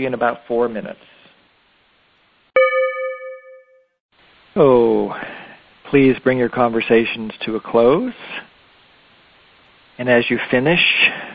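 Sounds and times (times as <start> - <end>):
speech: 0.0 - 1.2, 4.6 - 5.3, 5.9 - 8.5, 10.0 - 11.3
single bell struck during a guided mindfulness exercise: 2.6 - 3.9.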